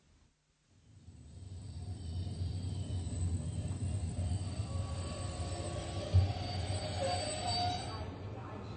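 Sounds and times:
train rolling into a station: 0:00.9 - 0:08.7
faint metallic squeals of train wheels: 0:01.5 - 0:08.3.

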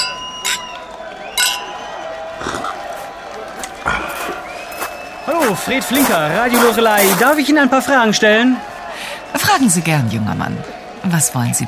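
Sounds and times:
champagne glasses clinking in a toast: 0:00.0 - 0:01.9
murmuring crowd with people talking: 0:00.0 - 0:11.6
speech: 0:05.5 - 0:08.8, 0:09.4 - 0:11.6.

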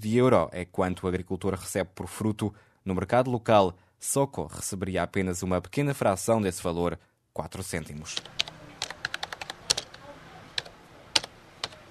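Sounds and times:
speech: 0:00.0 - 0:08.5
woman typing on a computer keyboard in Kampala: 0:08.1 - 0:11.8.

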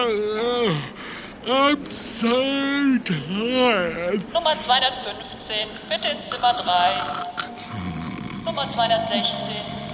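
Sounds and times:
faint steady hum: 0:00.0 - 0:09.9
speech: 0:01.5 - 0:09.6
person snoring with rough rumbling breath: 0:07.0 - 0:09.9.

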